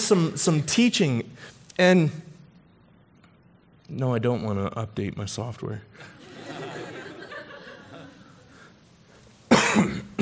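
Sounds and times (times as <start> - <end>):
speech: 0.1 - 2.3, 3.9 - 6.2
laughter: 6.0 - 8.7
person coughing into the microphone: 9.5 - 10.2.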